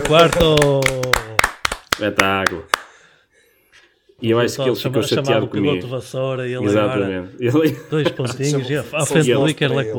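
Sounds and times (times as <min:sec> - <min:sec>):
person clapping hands: 0:00.0 - 0:03.0
speech: 0:00.1 - 0:01.2, 0:02.0 - 0:02.8, 0:04.2 - 0:09.9
laughter: 0:07.5 - 0:09.9.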